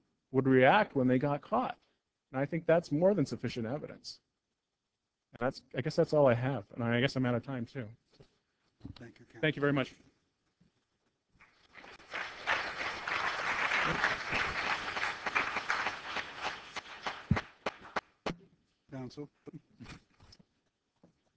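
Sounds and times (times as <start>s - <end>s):
speech: 0.3s - 4.2s, 5.3s - 8.0s, 8.8s - 10.1s, 18.9s - 20.0s
audience applauding: 11.4s - 18.1s.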